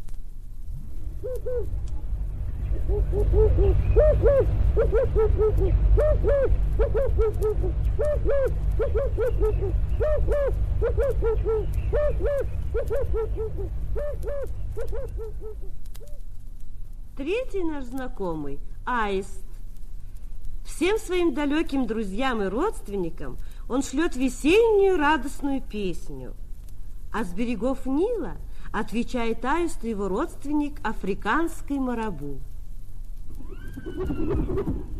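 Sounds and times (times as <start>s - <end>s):
low constant rumble: 0.0s - 34.9s
African dove cooing: 1.2s - 1.8s, 2.6s - 16.3s, 33.4s - 34.9s
speech: 1.2s - 2.0s, 2.8s - 16.2s, 17.2s - 19.5s, 20.8s - 26.4s, 27.1s - 32.5s, 33.8s - 34.9s.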